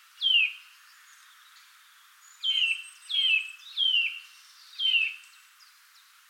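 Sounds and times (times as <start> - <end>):
Eurasian nuthatch Sitta europaea giving downslurred whistled calls: 2.4 - 4.2, 4.8 - 5.3.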